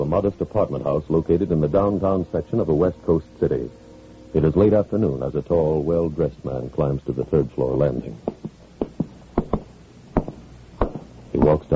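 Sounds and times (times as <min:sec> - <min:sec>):
speech: 0:00.1 - 0:08.3, 0:11.5 - 0:11.7
knocking on an apartment door: 0:08.3 - 0:11.5.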